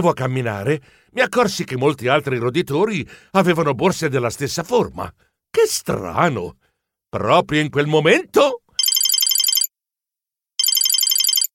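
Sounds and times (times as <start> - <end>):
speech: 0.0 - 8.6
mobile phone ringing with a bright high electronic ringtone: 8.8 - 9.7, 10.6 - 11.5.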